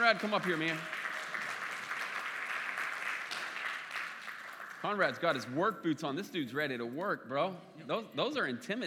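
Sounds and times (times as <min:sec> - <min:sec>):
audience applause welcoming a volunteer: 0:00.0 - 0:05.3
speech: 0:00.1 - 0:01.1, 0:04.8 - 0:08.8.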